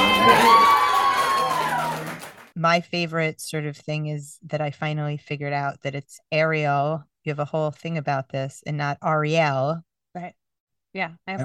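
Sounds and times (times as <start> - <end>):
shrill whoops: 0.0 - 2.3
large crowd roaring and cheering: 0.0 - 2.4
speech: 2.6 - 11.4.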